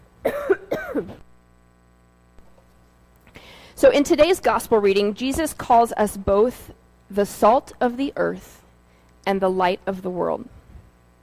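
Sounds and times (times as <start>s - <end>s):
raspy voiced coughs from one person: 0.2s - 1.2s
speech: 3.8s - 8.6s, 9.3s - 10.6s.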